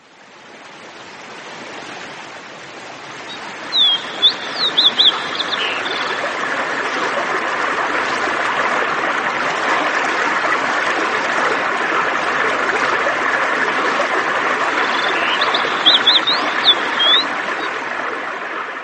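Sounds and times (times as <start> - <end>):
rushing water from a raft running river rapids: 0.0 - 18.8
bird chirps: 3.7 - 6.4, 14.8 - 17.8.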